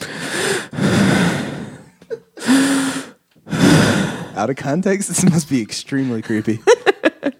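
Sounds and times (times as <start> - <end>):
deep raspy breathing in and out: 0.0 - 4.4
speech: 4.4 - 7.3.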